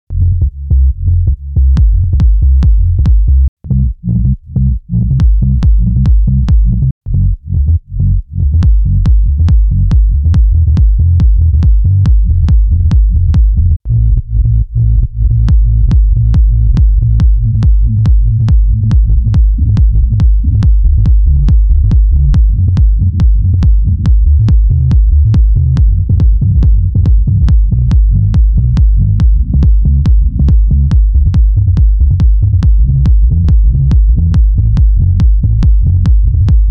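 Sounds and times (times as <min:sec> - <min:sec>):
bass loop: 0:00.1 - 0:36.6.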